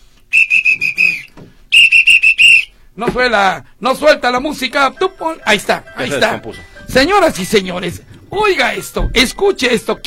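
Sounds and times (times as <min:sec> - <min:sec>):
whistle blown in short shrill blasts: 0:00.3 - 0:02.8
speech: 0:03.0 - 0:10.0.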